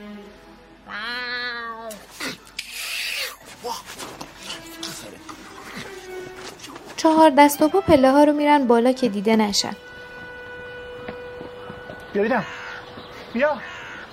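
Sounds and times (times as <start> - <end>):
man behind a window imitating a cat meow: 0.9 - 2.0
shuffling sounds: 3.4 - 7.1
speech: 7.0 - 9.9, 12.2 - 12.6, 13.3 - 14.1.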